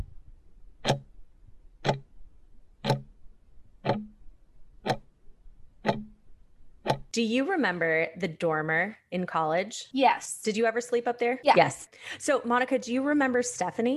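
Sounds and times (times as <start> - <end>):
clock ticking: 0.8 - 1.2, 1.8 - 2.2, 2.8 - 3.2, 3.8 - 4.2, 4.8 - 5.1, 5.8 - 6.2, 6.8 - 7.2
speech: 7.2 - 13.9.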